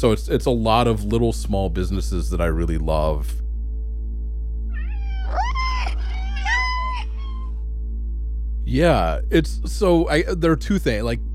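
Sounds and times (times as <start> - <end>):
speech: 0.0 - 3.4, 8.7 - 11.3
steady low hum: 0.0 - 11.3
cat meowing: 4.7 - 7.5.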